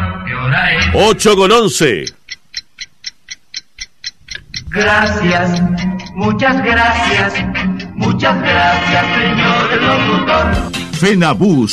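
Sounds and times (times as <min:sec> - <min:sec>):
speech: 0:00.4 - 0:02.2, 0:04.7 - 0:11.7
bird-like chirping played as a radio time signal for a watch and jewelry shop: 0:00.7 - 0:06.3.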